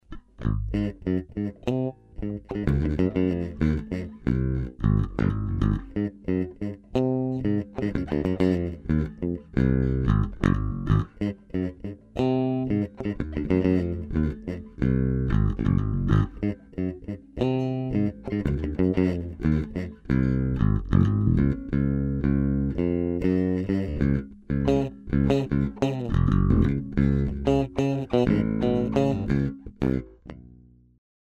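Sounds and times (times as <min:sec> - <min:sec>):
maple bass guitar on bridge pickup: 0:00.0 - 0:31.0.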